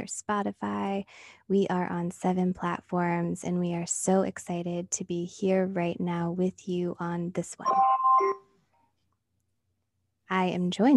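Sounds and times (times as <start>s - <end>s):
speech: 0.0s - 8.0s, 10.3s - 10.9s
phone electronic chime: 7.7s - 8.5s.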